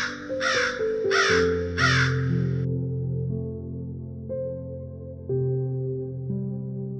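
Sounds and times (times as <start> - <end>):
crow cawing: 0.0 - 2.7
steady music: 0.0 - 6.9.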